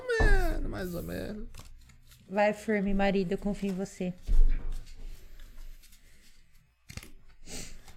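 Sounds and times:
speech: 0:00.8 - 0:01.6, 0:02.3 - 0:04.4
papery riffling and shuffling of a deck of playing cards: 0:00.8 - 0:02.3, 0:05.4 - 0:07.9.

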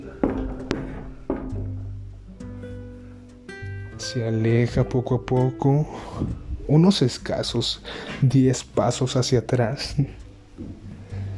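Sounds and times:
hollow knocks on a wooden door: 0:00.2 - 0:01.9
speech: 0:04.0 - 0:10.2.

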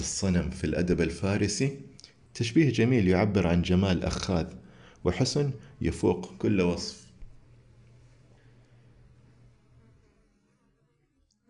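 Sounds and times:
speech: 0:00.0 - 0:07.0
quiet hiss: 0:00.0 - 0:10.4
housefly buzzing: 0:09.4 - 0:11.4.

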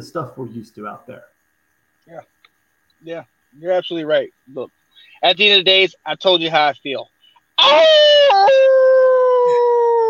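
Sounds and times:
speech: 0:00.0 - 0:01.4, 0:02.1 - 0:02.4, 0:03.0 - 0:08.7
person imitating a wolf howl: 0:07.6 - 0:10.0.

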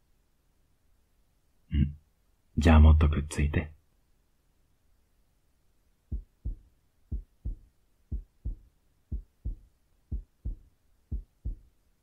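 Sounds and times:
speech: 0:02.6 - 0:03.8
slow steady heartbeat heard close to the chest: 0:06.1 - 0:11.8.

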